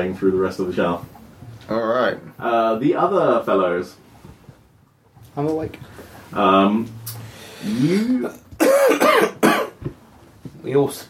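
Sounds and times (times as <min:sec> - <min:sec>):
speech: 0:00.0 - 0:04.0, 0:05.4 - 0:10.0, 0:10.6 - 0:11.0
faint grunt: 0:07.6 - 0:08.4
man coughing: 0:07.7 - 0:09.8.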